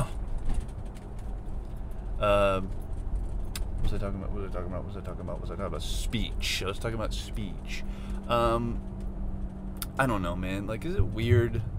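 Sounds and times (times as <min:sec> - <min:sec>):
road and engine rumble inside a moving car: 0:00.0 - 0:11.7
speech: 0:02.2 - 0:02.8, 0:03.8 - 0:09.0, 0:10.0 - 0:11.7.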